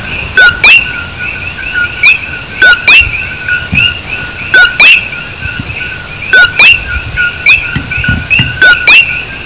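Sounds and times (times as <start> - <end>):
frog of alien species calling in Hawaii: 0.0 - 9.4.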